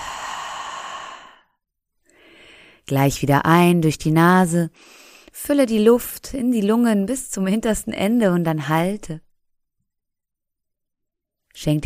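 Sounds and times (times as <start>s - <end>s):
long deep exhale through the mouth during a guided breathing exercise: 0.0s - 1.5s
speech: 2.9s - 9.2s, 11.6s - 11.8s.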